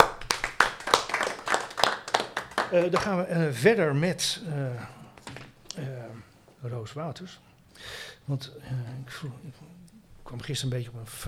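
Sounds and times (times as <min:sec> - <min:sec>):
audience applause at a live event: 0:00.0 - 0:03.3
speech: 0:02.7 - 0:05.0, 0:05.8 - 0:06.0, 0:06.6 - 0:11.2.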